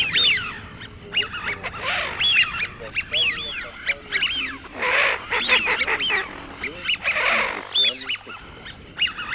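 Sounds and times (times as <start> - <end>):
Eurasian wigeon whistling calls from an electronic game caller: 0.0 - 9.3.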